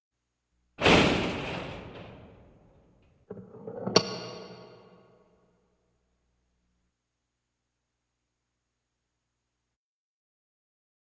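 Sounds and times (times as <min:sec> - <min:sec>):
gate closing: 0:00.8 - 0:05.2.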